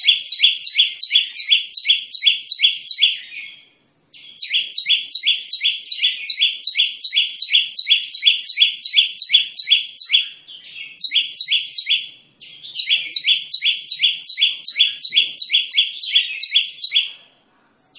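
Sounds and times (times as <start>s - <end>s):
olive-backed tailorbird repeating two-note chips: 0.0s - 3.6s, 4.2s - 17.3s.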